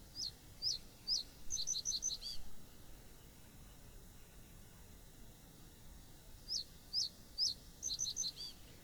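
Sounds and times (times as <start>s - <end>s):
faint low hiss: 0.0s - 8.8s
common reed bunting song of high metallic whistles: 0.2s - 2.4s, 6.5s - 8.6s.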